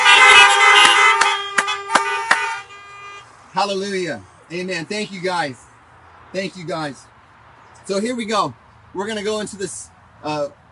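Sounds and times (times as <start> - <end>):
many car horns honking during a church service: 0.0 - 3.4
speech: 3.6 - 5.7, 6.3 - 7.1, 7.9 - 10.6.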